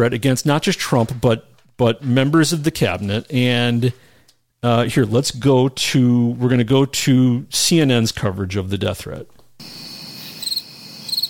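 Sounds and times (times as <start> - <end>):
speech: 0.0 - 9.9
crickets chirping: 9.6 - 11.2.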